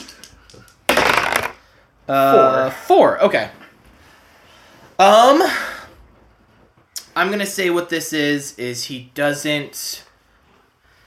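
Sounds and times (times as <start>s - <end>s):
two dice being rolled: 0.0s - 1.6s
speech: 2.1s - 3.6s, 5.0s - 5.6s, 7.2s - 10.1s.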